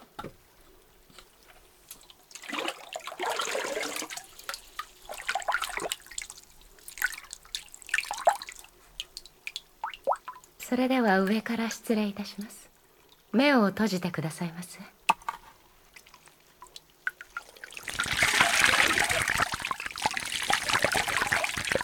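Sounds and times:
hot water rinsing hair during a hair wash: 0.2s - 11.3s, 15.0s - 21.8s
speech: 10.7s - 12.6s, 13.3s - 15.0s.

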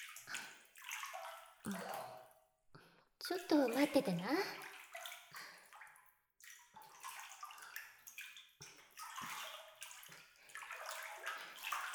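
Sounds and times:
water sloshing and splashing in a bathtub: 0.0s - 11.9s
speech: 1.7s - 2.0s, 3.3s - 4.7s.

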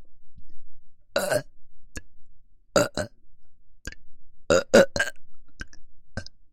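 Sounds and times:
person burping: 1.2s - 1.5s, 2.8s - 3.1s, 4.5s - 6.3s.

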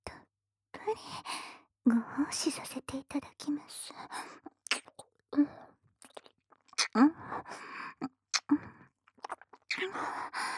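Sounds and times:
speech: 0.9s - 4.5s, 5.4s - 5.6s, 6.9s - 8.7s
wet ASMR mouth sounds from a tongue licking an ear: 4.4s - 5.1s, 6.0s - 7.0s, 8.3s - 9.9s.

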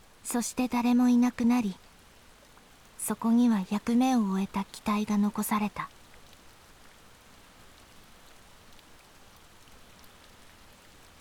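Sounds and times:
steady rain pattering on surfaces: 0.0s - 11.1s
speech: 0.3s - 1.9s, 3.1s - 6.0s.

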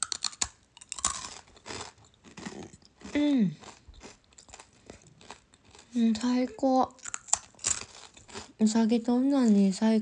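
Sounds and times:
rice crackers crunching, eaten with sticky fingers: 0.0s - 6.3s, 7.0s - 8.6s
speech: 3.2s - 3.7s, 6.0s - 7.0s, 8.6s - 10.0s.

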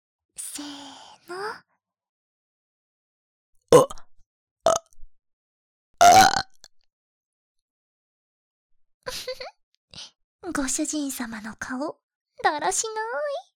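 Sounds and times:
speech: 0.6s - 1.7s, 10.5s - 13.4s
loud burps: 3.8s - 4.0s, 4.7s - 4.9s, 6.0s - 6.6s.

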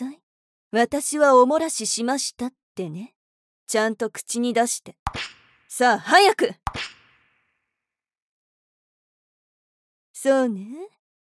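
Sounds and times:
speech: 0.7s - 6.9s, 10.2s - 11.0s
whip lash snapping: 5.1s - 5.6s, 6.7s - 7.2s.

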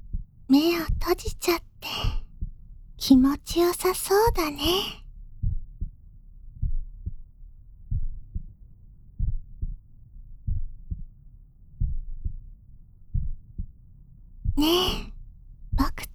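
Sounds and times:
steady heartbeat: 0.0s - 3.6s, 4.2s - 13.8s
speech: 0.5s - 2.2s, 3.0s - 5.0s, 14.6s - 15.1s.

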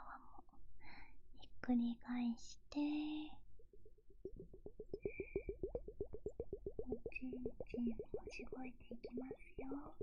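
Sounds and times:
speech: 1.7s - 3.4s, 7.4s - 10.0s
water gurgling and plopping: 3.0s - 10.0s.

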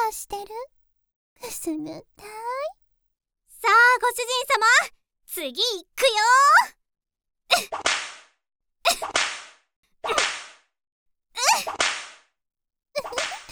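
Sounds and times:
speech: 0.1s - 0.8s, 1.4s - 2.8s, 3.6s - 6.8s, 7.5s - 8.1s
sharp whip lashes cracking: 7.5s - 8.3s, 8.9s - 10.6s, 11.4s - 12.3s, 13.0s - 13.5s.

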